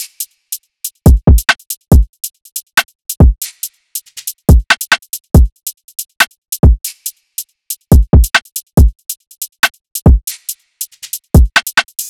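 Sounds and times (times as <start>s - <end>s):
drill drum loop at 140 BPM: 1.0s - 2.1s, 3.1s - 5.5s, 7.9s - 12.0s.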